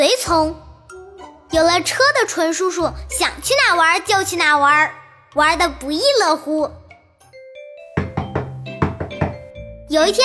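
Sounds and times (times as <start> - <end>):
speech: 0.0 - 0.7, 1.5 - 6.8, 9.9 - 10.2
urgent rapid knocking on an inn room door: 8.0 - 9.5.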